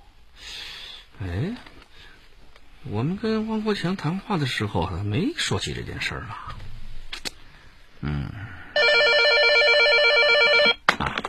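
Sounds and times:
speech: 2.8s - 6.6s
telephone ringing with a bright buzzing electronic trill: 8.8s - 10.9s.

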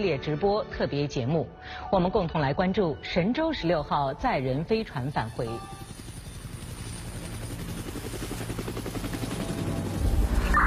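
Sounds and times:
speech: 0.0s - 5.9s
helicopter engine drone: 3.9s - 10.6s.

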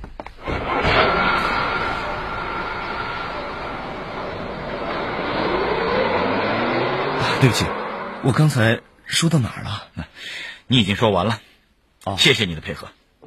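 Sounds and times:
loaded vehicle engine starting off: 0.4s - 9.0s
faint high whine: 0.4s - 9.5s
speech: 7.4s - 13.2s.

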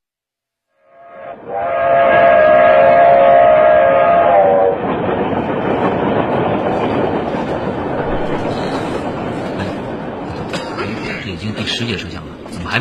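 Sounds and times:
loud train horn blaring: 0.8s - 4.9s
train rolling along the rails, rumble and rattle: 1.2s - 12.7s.

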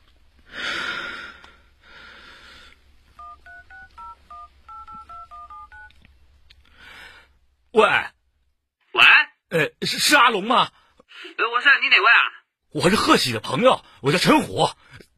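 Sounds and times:
deep breath in and out: 0.5s - 2.8s, 6.7s - 7.4s
telephone number dialed on a touch-tone keypad: 3.2s - 5.9s
speech: 7.8s - 8.1s, 9.5s - 10.8s, 11.9s - 14.8s.

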